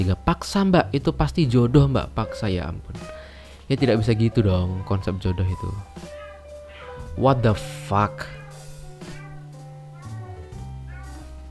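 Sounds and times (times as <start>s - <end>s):
speech: 0.0s - 6.1s, 7.2s - 8.4s
cat yowling: 4.0s - 11.4s.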